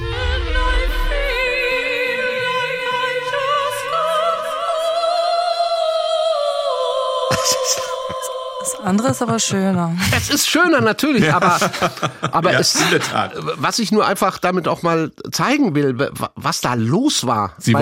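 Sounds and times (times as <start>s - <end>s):
woman singing in a high operetta-style voice in a song remix: 0.0s - 10.0s
laughter: 7.3s - 14.0s
speech: 8.9s - 17.7s.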